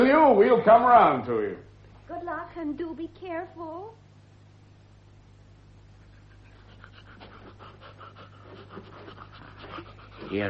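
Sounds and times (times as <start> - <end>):
speech: 0.0 - 4.0, 10.3 - 10.4
low steady hum: 0.0 - 10.4
old dog panting: 6.0 - 10.4.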